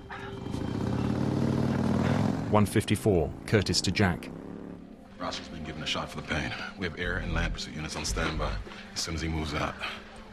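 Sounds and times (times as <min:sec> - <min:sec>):
motorbike engine droning: 0:00.0 - 0:06.0
speech: 0:02.5 - 0:04.4, 0:05.2 - 0:10.1.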